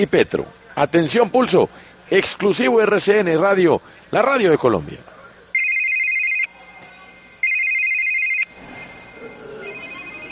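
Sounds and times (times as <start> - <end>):
speech: 0.0 - 5.1
telephone ringing with electronic tone: 5.6 - 10.2.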